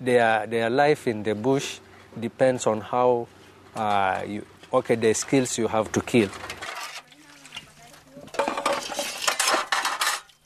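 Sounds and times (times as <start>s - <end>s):
speech: 0.0s - 6.6s
dishes and cutlery clinking while being washed: 6.4s - 10.4s.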